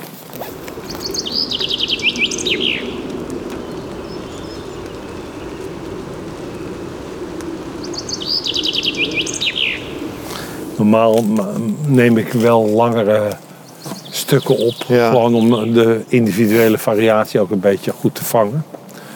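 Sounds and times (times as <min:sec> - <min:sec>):
steady low outdoor rumble: 0:00.0 - 0:13.4
common chaffinch singing: 0:00.3 - 0:16.7
speech: 0:10.9 - 0:13.4, 0:14.3 - 0:18.8.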